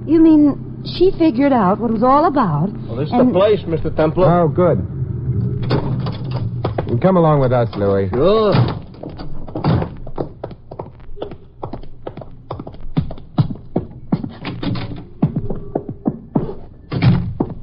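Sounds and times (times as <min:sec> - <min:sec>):
speech: 0:00.1 - 0:04.9, 0:06.9 - 0:08.8
footsteps climbing noisy stairs: 0:06.0 - 0:17.6.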